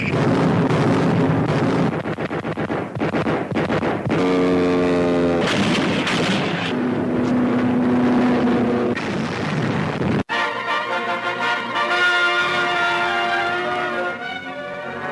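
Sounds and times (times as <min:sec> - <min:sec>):
explosions at the Battle of Midway: 0:00.0 - 0:04.6, 0:05.3 - 0:10.3
anti-aircraft fire at the Battle of Midway: 0:00.0 - 0:10.3
US Navy and Marine warplanes roaring overhead at the Battle of Midway: 0:04.0 - 0:15.1.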